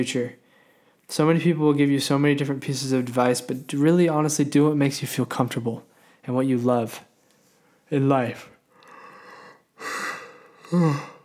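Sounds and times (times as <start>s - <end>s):
speech: 0.0s - 0.4s, 1.1s - 7.1s, 7.9s - 8.5s, 10.7s - 11.1s
person yawning: 8.9s - 11.2s.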